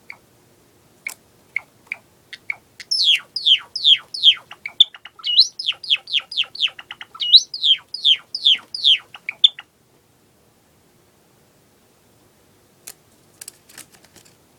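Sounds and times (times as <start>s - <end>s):
Java sparrow singing while walking about: 0.0s - 0.2s, 1.0s - 9.7s.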